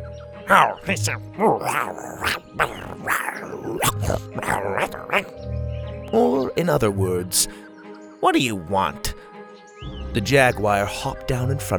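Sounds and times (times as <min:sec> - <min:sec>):
voice imitating monkey jungle speech with throaty hoots and grunts: 0:00.5 - 0:05.4
speech: 0:00.5 - 0:11.7.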